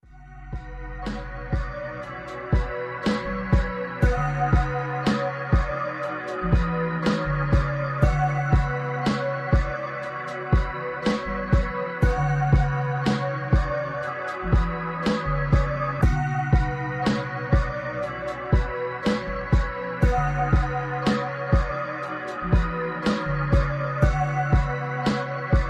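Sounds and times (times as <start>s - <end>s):
lofi beat: 0.0s - 25.6s.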